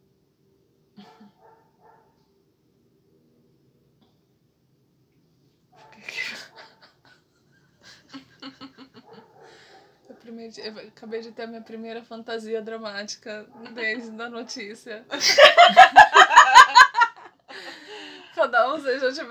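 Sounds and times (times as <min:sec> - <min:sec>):
dog barking: 0:01.0 - 0:02.2, 0:05.8 - 0:06.9, 0:09.0 - 0:10.3
laughter: 0:06.2 - 0:09.3, 0:15.2 - 0:17.8
speech: 0:10.4 - 0:16.0, 0:18.7 - 0:19.2.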